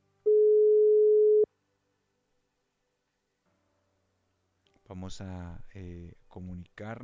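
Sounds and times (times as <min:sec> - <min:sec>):
telephone line tone while dialing a call: 0:00.3 - 0:01.5
speech: 0:04.9 - 0:07.0.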